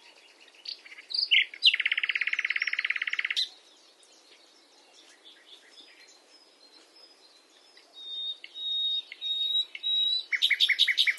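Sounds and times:
common nightingale Luscinia megarhynchos singing: 0:00.0 - 0:11.1.

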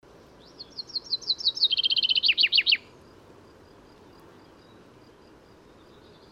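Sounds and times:
common chaffinch singing: 0:00.4 - 0:03.0, 0:04.1 - 0:06.2.

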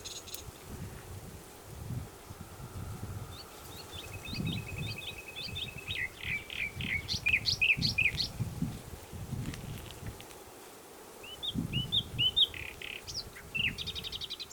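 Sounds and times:
common nightingale Luscinia megarhynchos song: 0:00.0 - 0:00.6, 0:02.1 - 0:08.5, 0:11.2 - 0:14.5.

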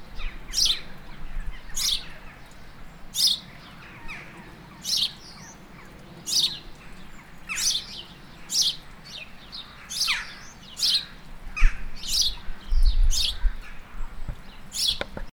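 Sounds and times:
house sparrow chirping, Passer domesticus: 0:00.0 - 0:15.2.

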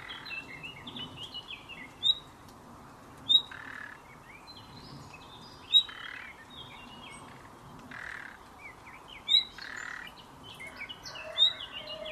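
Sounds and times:
many other birds twittering and chattering: 0:00.0 - 0:12.1.

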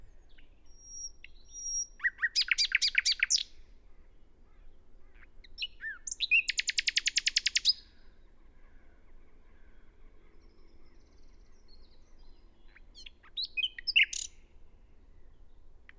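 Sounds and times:
Common nightingale Luscinia megarhynchos singing: 0:00.0 - 0:08.5, 0:10.0 - 0:15.9.

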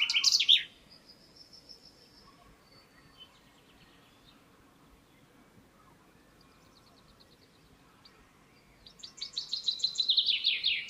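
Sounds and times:
common chaffinch Fringilla coelebs song fragment: 0:00.0 - 0:10.8.

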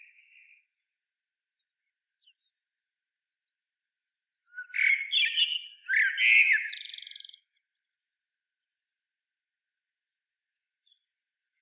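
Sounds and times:
common blackbird Turdus merula singing scratchy squeaky phrases with a buzzy trill: 0:04.5 - 0:07.6.

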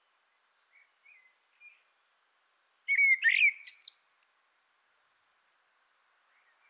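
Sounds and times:
Turdus merula common blackbird song phrase: 0:00.7 - 0:01.9, 0:02.9 - 0:04.3.

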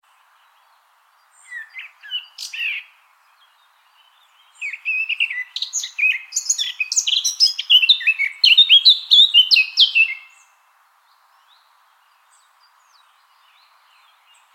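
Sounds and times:
Eurasian blackcap Sylvia atricapilla warbling song: 0:01.3 - 0:10.5, 0:12.4 - 0:14.5.

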